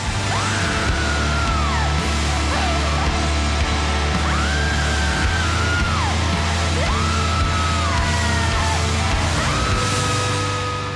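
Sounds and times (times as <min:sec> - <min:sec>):
dense heavy band backing: 0:00.0 - 0:10.9
screaming and wailing vocals from a song: 0:00.0 - 0:10.9.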